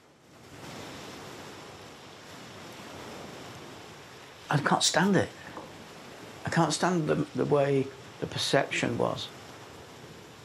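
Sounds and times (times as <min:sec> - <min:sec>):
waves crashing on a pebble beach: 0:00.3 - 0:10.4
speech: 0:04.5 - 0:05.4, 0:06.6 - 0:09.4.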